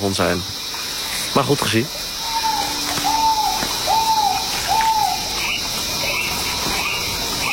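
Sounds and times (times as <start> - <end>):
speech: 0.0 - 0.7, 1.4 - 2.1
steady hum of insects: 0.0 - 7.5
rail calling from low in a marsh: 1.9 - 7.5.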